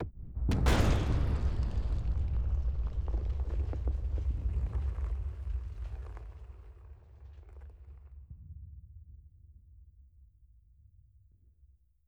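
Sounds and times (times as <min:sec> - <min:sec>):
gate explosion: 0:00.0 - 0:08.7.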